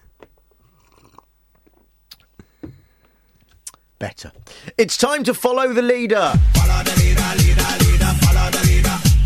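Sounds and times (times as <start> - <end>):
soft slurps of hot ginger tea: 0.6 - 1.3
person swallowing: 0.6 - 2.5
wet mouth clicks: 0.6 - 2.5, 3.5 - 3.8
speech: 4.0 - 9.1.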